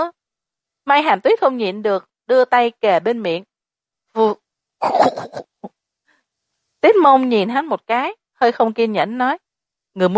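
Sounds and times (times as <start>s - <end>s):
speech: 0.9s - 3.5s, 4.2s - 5.5s, 6.8s - 9.4s, 10.0s - 10.1s
young man fake coughing: 4.8s - 5.6s.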